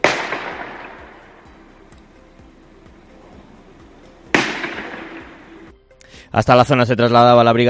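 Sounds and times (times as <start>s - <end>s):
gunshots at night in a street: 0.0s - 1.5s, 4.3s - 5.6s
low rumble of traffic: 0.0s - 6.0s
speech: 6.3s - 7.6s.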